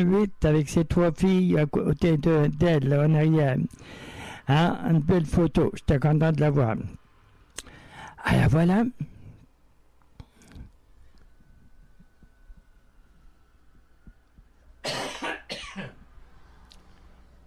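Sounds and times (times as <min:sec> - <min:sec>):
speech: 0:00.0 - 0:07.0, 0:07.6 - 0:09.1
low steady hum: 0:00.0 - 0:17.4
person coughing: 0:14.8 - 0:16.0.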